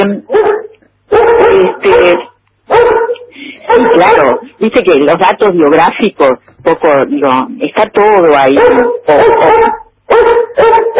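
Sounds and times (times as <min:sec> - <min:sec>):
speech: 0:00.0 - 0:00.4, 0:04.1 - 0:10.9
pet dog barking and whimpering: 0:00.2 - 0:04.6, 0:08.4 - 0:10.9.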